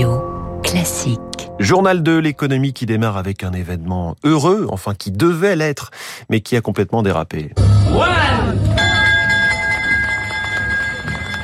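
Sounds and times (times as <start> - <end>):
speech: 0.8 - 8.8
stock exchange opening bell ringing: 8.7 - 11.4.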